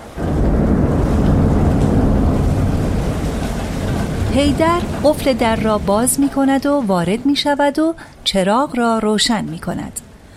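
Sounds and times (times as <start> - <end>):
deep rumbling thunder: 0.0 - 8.3
heavy pouring rain in a thunderstorm: 0.0 - 10.3
speech: 4.4 - 10.1.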